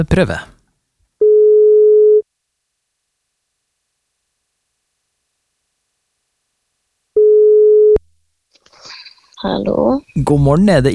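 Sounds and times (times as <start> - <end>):
speech: 0.0 - 0.6, 9.4 - 10.9
long steady ringback tones on an outgoing phone call: 1.2 - 2.2, 7.2 - 8.0.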